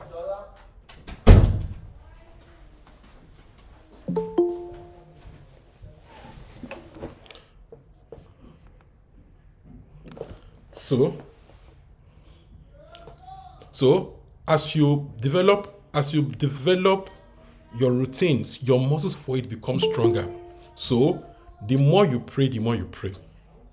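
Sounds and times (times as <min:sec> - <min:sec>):
door slamming shut: 0:01.2 - 0:01.8
speech: 0:10.9 - 0:11.3, 0:13.8 - 0:23.3.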